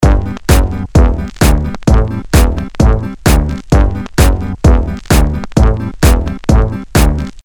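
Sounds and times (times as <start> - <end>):
tuba rhythm: 0.0 - 7.3
bass: 0.0 - 7.4
guitar rhythm: 0.0 - 7.4.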